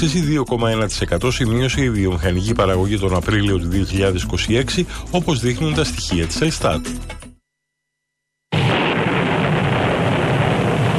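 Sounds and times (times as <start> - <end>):
speech: 0.0 - 7.2
loud rain: 8.6 - 10.9.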